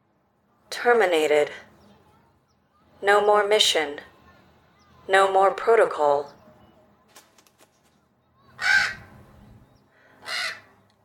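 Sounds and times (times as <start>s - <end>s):
speech: 0.8s - 1.7s, 3.0s - 4.1s, 5.1s - 6.4s
faint clicks and rustles: 7.1s - 8.1s
American crow cawing: 8.6s - 9.1s, 10.0s - 10.8s.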